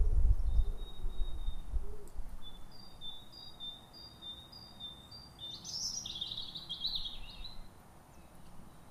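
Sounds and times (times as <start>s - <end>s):
European robin Erithacus rubecula song: 0.4s - 8.8s.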